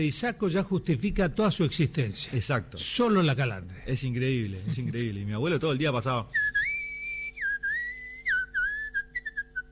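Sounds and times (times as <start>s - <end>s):
speech: 0.0s - 6.7s
person whistling a lilting chamamé folk melody: 6.3s - 9.7s.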